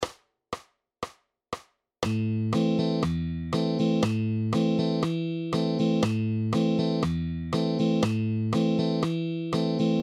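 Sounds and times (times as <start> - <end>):
rhythm guitar exercises: 2.0 - 10.0.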